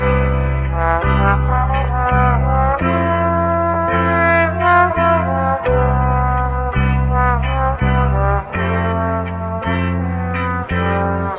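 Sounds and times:
sad horns loop: 0.0 - 11.3.

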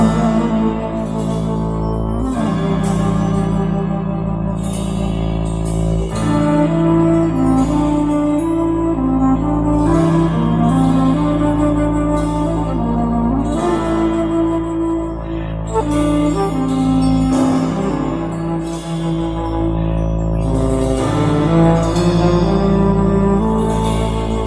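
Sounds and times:
sad flute loop: 0.0 - 24.4.

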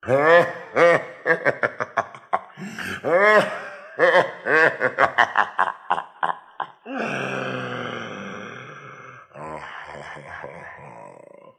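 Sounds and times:
long laugh: 0.1 - 8.0.

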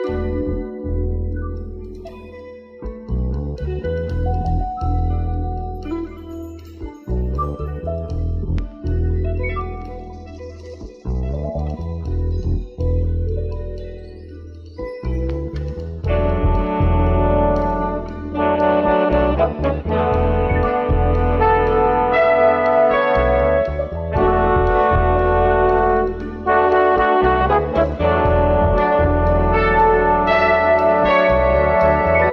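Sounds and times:
guitar loops: 0.0 - 32.3
keys loops: 0.0 - 32.3
horns loops: 16.1 - 32.3.

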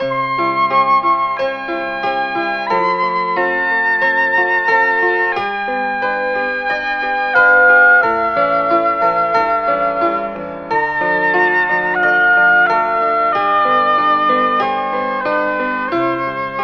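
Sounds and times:
piano in phonk loops: 0.0 - 16.6
saxophone in phonk loops: 7.3 - 16.6.

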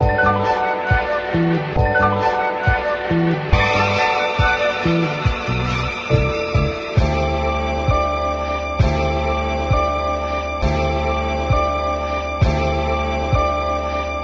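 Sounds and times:
phonk strings loop: 0.0 - 14.2.

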